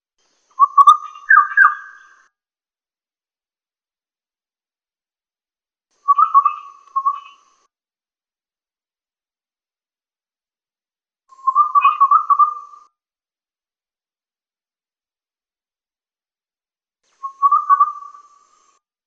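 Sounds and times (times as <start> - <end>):
Kalimantan striped wren-babbler chirping: 0.5 - 2.2, 6.0 - 7.6, 11.3 - 12.8, 17.1 - 18.8.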